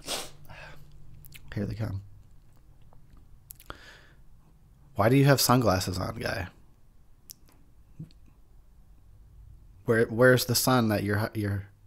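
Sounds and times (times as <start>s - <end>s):
person sniffling: 0.0s - 0.8s
speech: 1.6s - 2.1s, 5.0s - 6.6s, 9.9s - 11.7s.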